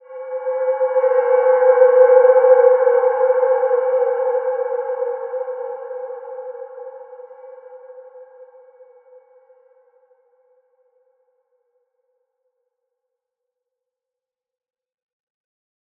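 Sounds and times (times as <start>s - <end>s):
wide dimension healing soundscape in C4: 0.0s - 8.8s.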